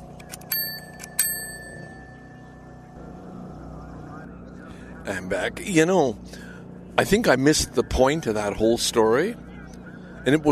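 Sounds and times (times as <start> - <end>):
low hum: 0.0 - 10.4
bright metallic bell rings: 0.5 - 3.0
speech: 5.1 - 9.5, 10.2 - 10.4.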